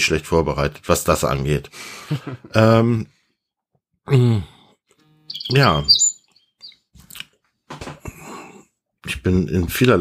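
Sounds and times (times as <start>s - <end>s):
speech: 0.0s - 3.2s, 4.0s - 4.6s, 5.4s - 6.1s, 9.0s - 9.9s
laughter: 2.0s - 2.6s
high-pitched bird chirps outside a window: 5.3s - 6.8s.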